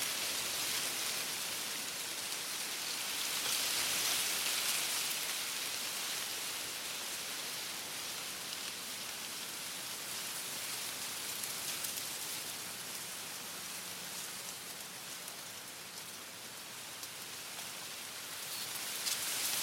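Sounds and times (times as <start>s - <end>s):
gentle breeze rustling through a bamboo forest: 0.0s - 19.6s
bamboo stalks creaking: 17.0s - 19.6s.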